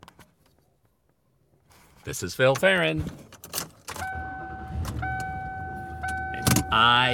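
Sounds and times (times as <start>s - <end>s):
speech: 2.0s - 3.4s, 6.7s - 7.1s
road noise: 3.8s - 7.1s
car being driven: 3.9s - 7.1s.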